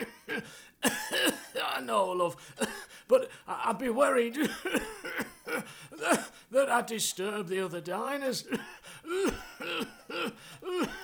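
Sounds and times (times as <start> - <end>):
harsh coughs: 0.0 - 1.8, 2.6 - 3.0, 4.4 - 6.4, 8.5 - 11.0
speech: 1.9 - 5.0, 6.0 - 11.0.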